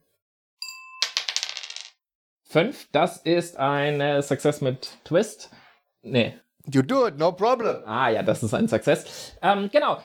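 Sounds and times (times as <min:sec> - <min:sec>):
dice clattering on a hard surface: 0:01.0 - 0:02.0
speech: 0:02.5 - 0:10.0.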